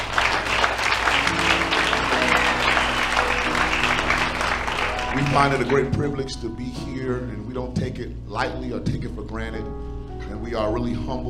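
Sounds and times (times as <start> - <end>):
audience clapping hands: 0.0 - 6.1
speech: 5.3 - 11.2.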